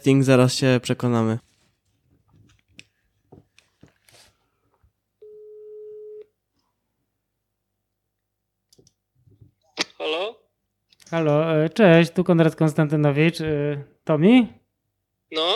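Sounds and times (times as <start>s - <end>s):
speech: 0.0s - 1.5s, 11.1s - 14.6s, 15.3s - 15.5s
phone ringback tone: 5.2s - 6.2s.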